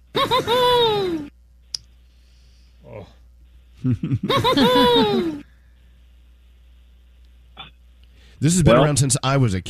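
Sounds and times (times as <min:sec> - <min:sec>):
dough mascot's high-pitched giggle when poked in the stomach: 0:00.2 - 0:01.3, 0:03.8 - 0:05.4
speech: 0:00.2 - 0:01.3, 0:03.8 - 0:05.4, 0:08.4 - 0:09.6.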